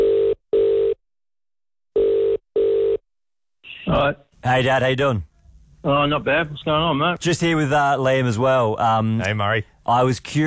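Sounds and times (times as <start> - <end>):
phone line ringback tone: 0.0 - 1.0, 2.0 - 3.0
speech: 3.9 - 10.4.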